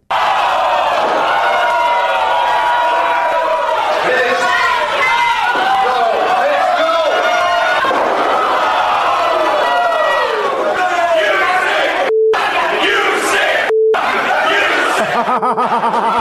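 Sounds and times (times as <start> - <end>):
large arena crowd chanting insults and jeering: 0.1 - 15.2
scattered laughter in an arena crowd: 14.8 - 16.1.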